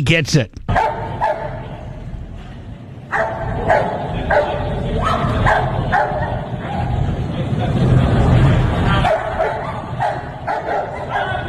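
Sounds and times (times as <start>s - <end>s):
speech: 0.0s - 0.8s
noisy rumbling background: 0.0s - 11.4s
police dog barking: 0.7s - 1.9s, 3.1s - 7.1s, 9.0s - 11.4s.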